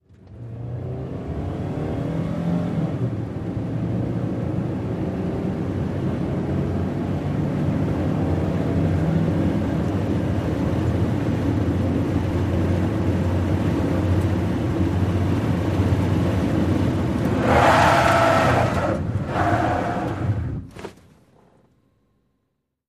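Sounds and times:
small compact car accelerating heard from interior: 0.1s - 20.7s
small compact car tires skidding: 16.6s - 20.8s.

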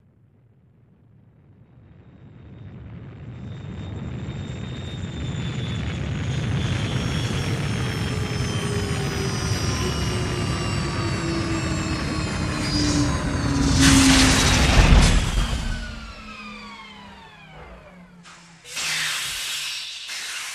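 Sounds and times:
jet rocket spaceship landing: 5.2s - 19.4s.

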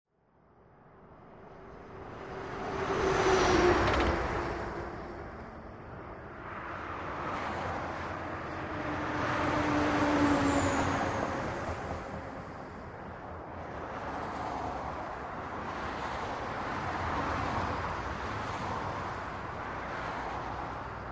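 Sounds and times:
traffic: 0.1s - 21.1s.

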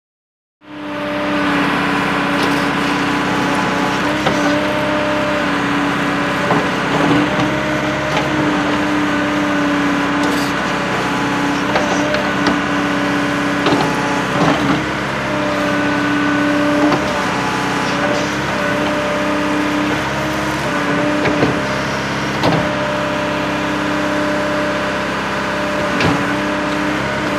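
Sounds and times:
JCB digger engine revving high: 0.7s - 27.3s
JCB digger going into gear and moving off: 1.2s - 24.1s.

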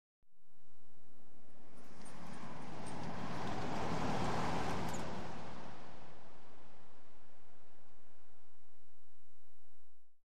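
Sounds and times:
car driving slowly past, exterior: 1.4s - 8.6s.

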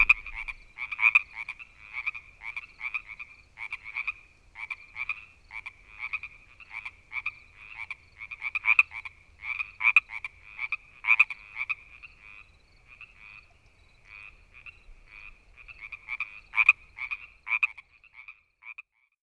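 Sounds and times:
frog calling with brief creaky chirps: 0.0s - 19.1s.

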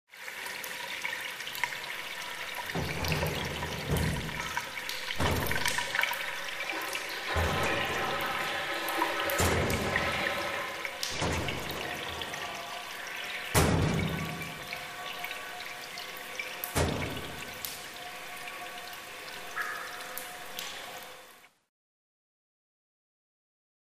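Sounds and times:
showers running in a locker room: 1.5s - 19.6s
gym locker room ambience: 1.6s - 21.1s.

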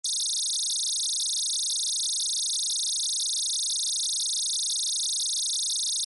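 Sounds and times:
rapid pulsing beeps with vibrato: 0.0s - 6.0s.

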